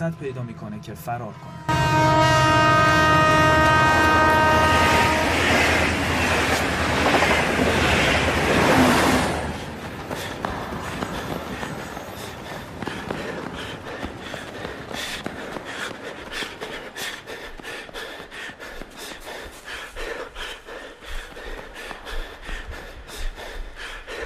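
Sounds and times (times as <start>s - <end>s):
speech: 0.0s - 2.6s
sustained horn-like tone: 0.0s - 5.7s
train passing beside a railway track: 0.0s - 19.0s.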